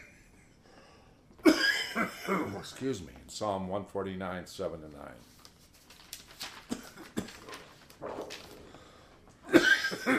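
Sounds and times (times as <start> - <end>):
man coughing dry hacks: 1.4 - 2.7, 9.4 - 10.1
speech: 2.6 - 5.4.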